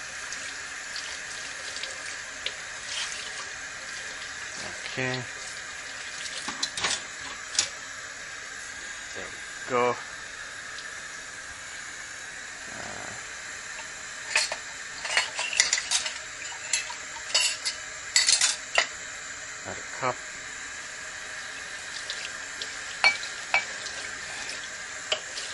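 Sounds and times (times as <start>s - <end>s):
running tap water filling a sink: 0.0s - 19.5s, 20.2s - 25.5s
speech: 5.0s - 5.4s, 9.7s - 10.1s, 20.0s - 20.3s
dishes and cutlery clattering: 14.3s - 18.9s, 23.0s - 23.7s.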